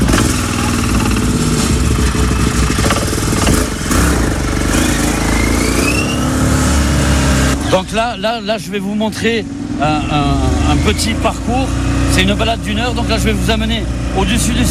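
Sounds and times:
rattling clatter: 0.0 - 5.0
small car engine rumbling: 0.0 - 14.7
speech: 7.8 - 14.7.

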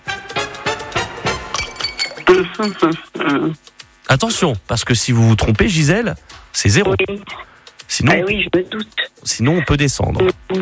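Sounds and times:
ice cubes dropping and clinking into a glass: 1.5 - 2.8
speech: 2.3 - 10.6.

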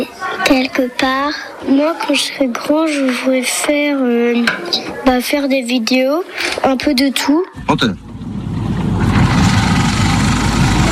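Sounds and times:
speech: 0.5 - 8.1
engine idling: 7.7 - 10.8.

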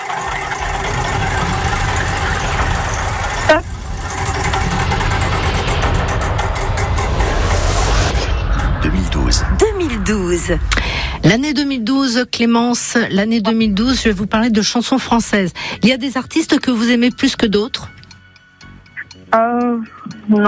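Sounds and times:
prize wheel spinning in a game: 0.0 - 6.6, 13.5 - 20.4
loud dense steady sound: 0.0 - 18.9
speech: 3.5 - 3.7, 10.1 - 18.0, 19.3 - 20.4.

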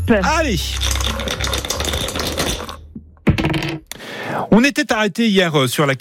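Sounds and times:
speech: 0.1 - 2.4, 4.5 - 5.9
two dice clattering and tumbling: 0.8 - 3.9.

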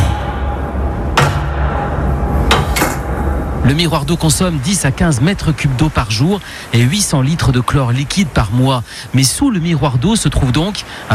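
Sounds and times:
sharp bangs of a trapdoor: 0.0 - 3.6
heavy metal grating trapdoor hauled open with a metallic clank: 2.5 - 3.2
speech: 3.7 - 11.1.

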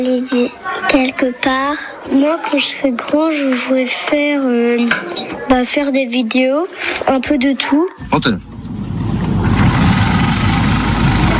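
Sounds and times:
speech: 0.0 - 8.5
motor idling with a low throbbing rumble: 8.0 - 11.3.

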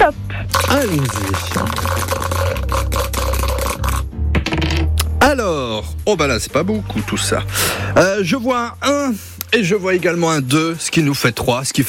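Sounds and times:
speech: 0.1 - 2.1, 5.5 - 11.8
dice rattling and clattering: 0.6 - 4.9.

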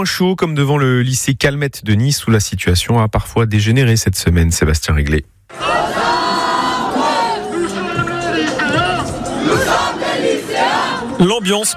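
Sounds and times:
speech: 0.0 - 6.0, 11.2 - 11.7
large crowd of high school students chanting and shouting protest slogans: 5.5 - 11.2.

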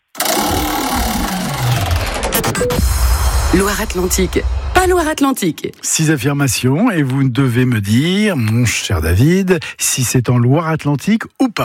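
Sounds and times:
game show prize wheel spinning, whirring and clicking: 0.0 - 2.8
speech: 3.5 - 11.6.

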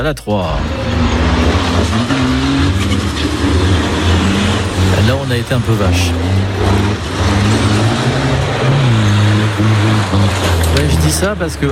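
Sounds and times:
speech: 0.0 - 2.2, 4.9 - 7.6, 9.6 - 11.6
engine rumbling drone at an event in Haute-Vienne: 0.0 - 11.6.

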